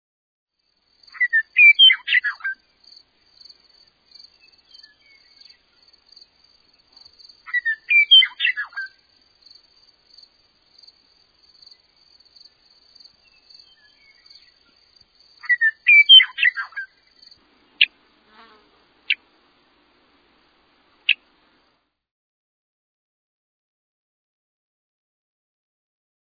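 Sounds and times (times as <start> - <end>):
Western Meadowlark song: 1.1 - 3.0, 3.8 - 5.8, 6.9 - 9.0, 11.6 - 18.0, 21.0 - 21.3.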